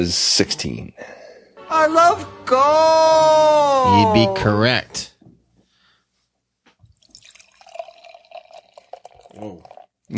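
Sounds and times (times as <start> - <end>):
speech: 0.0 - 5.1, 9.4 - 10.1
beer dripping: 6.9 - 9.9
beer pouring and spilling onto legs: 6.9 - 10.1.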